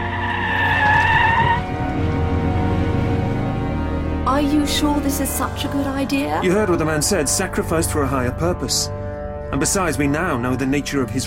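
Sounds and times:
car tires squealing as the car skids through a turn: 0:00.0 - 0:03.6
car engine rumbling: 0:00.0 - 0:11.2
speech: 0:04.7 - 0:11.2.

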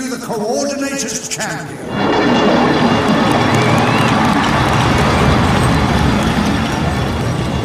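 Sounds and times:
speech: 0:00.1 - 0:02.6
huge crowd roaring and cheering inside a giant dome: 0:01.8 - 0:07.6.

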